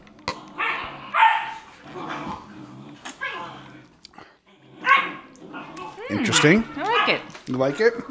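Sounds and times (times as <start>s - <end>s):
puppies barking and yipping: 0.6s - 2.3s, 4.8s - 8.0s
speech: 6.1s - 8.0s.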